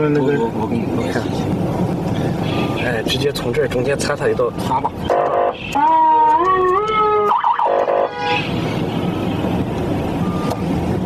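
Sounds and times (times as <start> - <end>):
speech: 0.0 - 6.8
trucks and cars idling in a traffic jam at a checkpoint after an accident: 0.0 - 11.0
truck and car horns honking in a traffic jam at a checkpoint: 5.0 - 6.2, 7.6 - 9.6.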